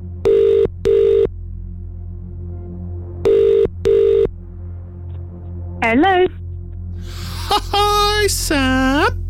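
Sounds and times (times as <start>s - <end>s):
telephone ringback tone during an outgoing call: 0.2s - 1.3s, 3.2s - 4.3s
speech: 5.8s - 6.4s, 7.5s - 9.2s
laughter: 7.1s - 9.1s.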